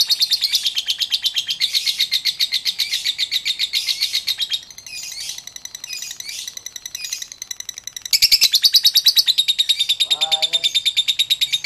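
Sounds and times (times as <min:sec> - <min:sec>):
Oriental magpie-robin singing: 0:00.0 - 0:11.6.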